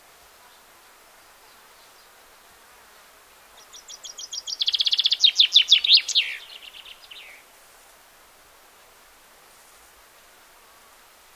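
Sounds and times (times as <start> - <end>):
common chaffinch singing: 3.6 - 7.4.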